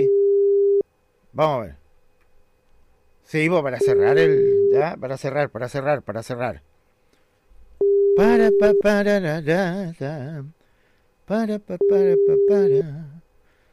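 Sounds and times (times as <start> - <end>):
telephone tone while a call is being placed: 0.0 - 0.8, 3.8 - 4.9, 7.8 - 9.2, 11.7 - 13.2
speech: 1.4 - 1.8, 3.3 - 6.7, 8.2 - 10.6, 11.3 - 13.1.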